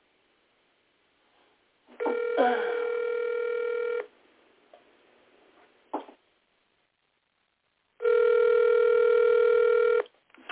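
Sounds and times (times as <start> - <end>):
outgoing phone call ringback tone: 2.0 - 4.1, 8.0 - 10.1.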